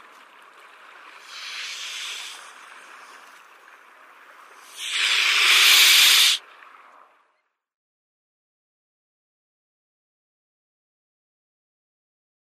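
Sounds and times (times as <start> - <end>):
mute swan hissing: 1.2 - 2.6, 4.6 - 6.4.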